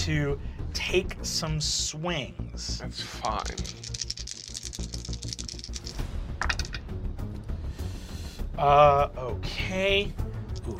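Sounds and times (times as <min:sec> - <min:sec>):
speech: 0:00.0 - 0:04.1, 0:08.6 - 0:10.7
many dice tumbling and rattling together: 0:03.2 - 0:06.8.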